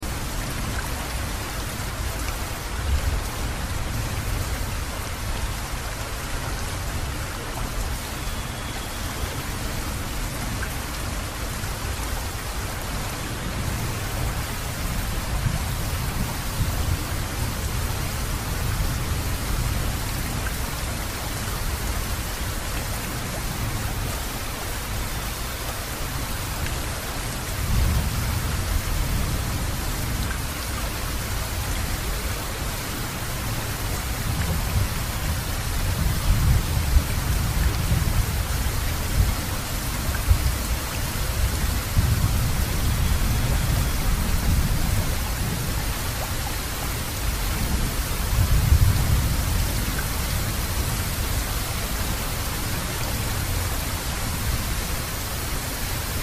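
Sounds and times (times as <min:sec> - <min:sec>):
rain recorded binaurally: 0:00.0 - 0:56.2.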